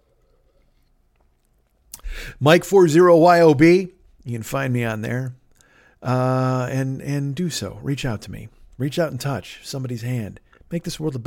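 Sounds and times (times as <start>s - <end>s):
person sipping water: 0.0s - 2.3s
wet mouth sounds: 0.2s - 2.3s
speech: 2.2s - 5.4s, 6.0s - 11.2s.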